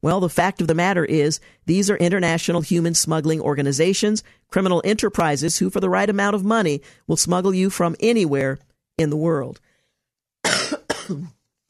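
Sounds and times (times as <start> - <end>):
speech: 0.0 - 9.7, 11.1 - 11.4
harsh coughing: 10.4 - 11.4.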